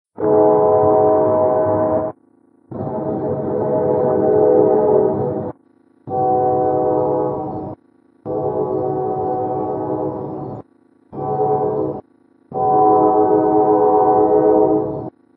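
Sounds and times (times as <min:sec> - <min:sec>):
train whistle: 0:00.2 - 0:02.2, 0:02.8 - 0:05.5, 0:06.1 - 0:10.6, 0:11.2 - 0:15.1.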